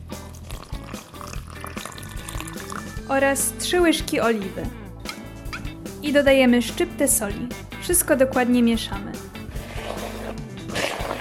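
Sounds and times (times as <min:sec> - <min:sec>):
warm water poured into a bowl of wholemeal flour: 0:00.4 - 0:03.0, 0:09.7 - 0:11.1
speech: 0:03.1 - 0:04.8, 0:06.0 - 0:09.2.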